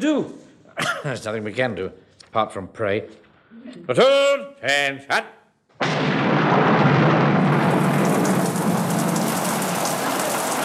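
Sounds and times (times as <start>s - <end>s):
speech: 0.0s - 6.7s
thunder rumbling: 5.8s - 10.6s
heavy rain pouring: 6.9s - 10.6s.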